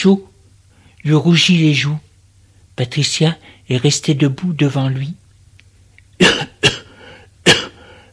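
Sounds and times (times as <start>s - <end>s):
speech: 0.0s - 0.3s, 1.0s - 2.1s, 2.8s - 5.2s, 6.2s - 6.8s
man coughing after swallowing a drink the wrong way: 6.2s - 7.9s.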